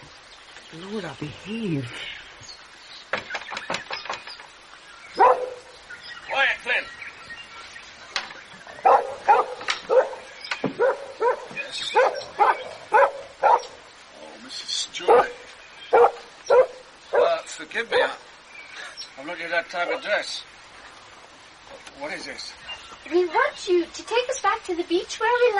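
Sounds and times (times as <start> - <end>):
speech: 0.7 - 2.2, 19.7 - 20.6, 22.2 - 25.5
dog barking with high yips: 5.2 - 5.7, 8.8 - 13.8, 15.0 - 18.2.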